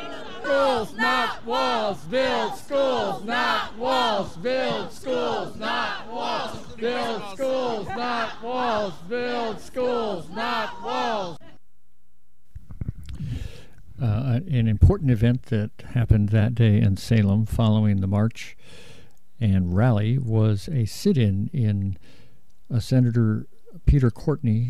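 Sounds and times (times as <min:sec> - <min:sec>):
large crowd of marchers at a protest rally in Salem booing rhythmically: 0:00.0 - 0:11.5
speech: 0:00.5 - 0:11.4, 0:14.0 - 0:24.6.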